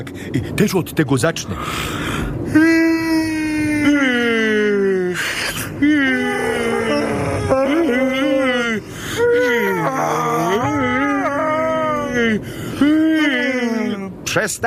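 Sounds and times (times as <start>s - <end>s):
speech: 0.0s - 2.8s, 14.4s - 14.6s
drawn-out sleepy moans: 1.8s - 14.2s
exaggerated fake yawns: 1.9s - 14.2s.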